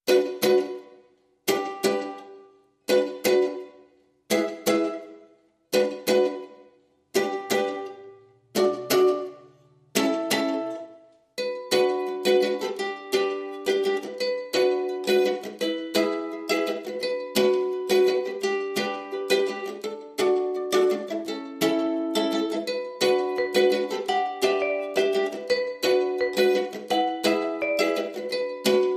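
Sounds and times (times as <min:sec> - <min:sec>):
mandolin: 0:00.0 - 0:28.9
ukulele: 0:00.0 - 0:28.9
vibraphone: 0:23.2 - 0:28.9.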